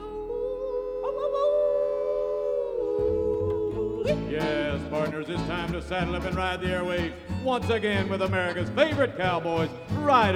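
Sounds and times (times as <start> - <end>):
low rumbling: 0.0 - 10.3
long howl: 0.2 - 4.2
speech: 5.0 - 10.3.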